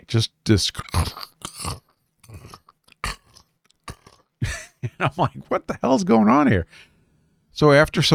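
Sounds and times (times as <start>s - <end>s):
speech: 0.1s - 1.8s, 5.0s - 6.9s, 7.6s - 8.1s
voice imitating crunching of bugs chewing in a ceiling: 0.6s - 4.4s.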